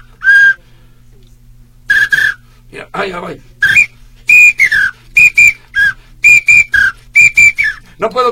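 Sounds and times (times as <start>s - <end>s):
whistle blown clumsily in short uneven toots: 0.0s - 0.6s, 1.9s - 2.5s, 3.6s - 7.9s
speech: 2.7s - 3.5s, 8.0s - 8.2s.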